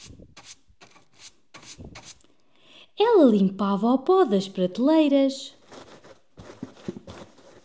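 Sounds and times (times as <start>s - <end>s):
woman sweeping the floor of her house by the Sea of Galilee: 0.0s - 2.2s
speech: 3.2s - 5.6s.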